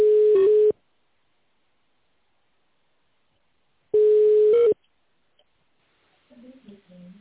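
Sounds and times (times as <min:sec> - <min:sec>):
telephone line tones while a call connects: 0:00.0 - 0:00.8, 0:04.0 - 0:04.8.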